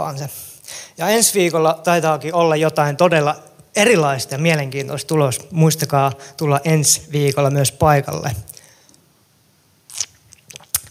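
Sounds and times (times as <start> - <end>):
speech: 0.0 - 8.5
person sipping water: 9.9 - 10.8
wet mouth and swallowing sounds: 9.9 - 10.8.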